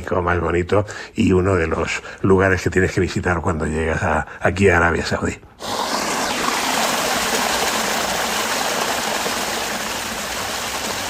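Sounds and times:
speech: 0.1 - 5.9
water flowing in a stream through a palm grove: 5.8 - 11.0.

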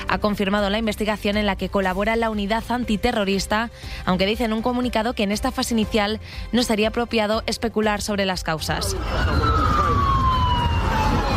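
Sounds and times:
speech: 0.1 - 9.5
ambulance sirens wailing at a train station in Huntingdon, Cambridgeshire: 8.7 - 11.3.

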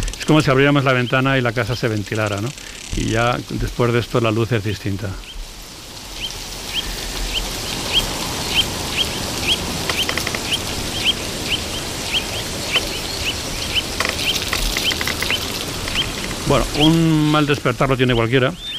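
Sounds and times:
noise: 0.0 - 18.7
speech: 0.3 - 5.3, 16.5 - 18.7
carrion crows calling at a communal roost in autumn morning: 6.1 - 16.5.

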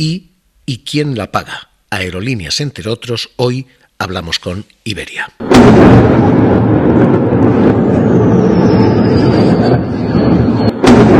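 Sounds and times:
speech: 0.0 - 6.6
sharp blast: 5.4 - 9.9, 10.6 - 11.1
explosions from military attacks rumbling: 5.4 - 11.1
thin high whistle falling in pitch: 8.1 - 10.8.

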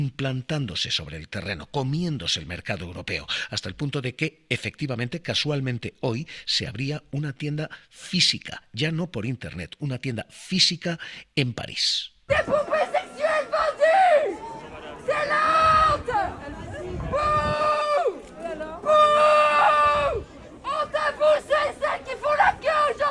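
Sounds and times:
speech: 0.0 - 13.0
crowd of protesters shouting and chanting at store opening: 12.3 - 23.0.

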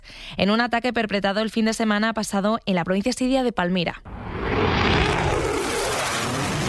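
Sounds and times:
speech: 0.3 - 5.0
US military jet aircraft roaring: 4.1 - 6.6.

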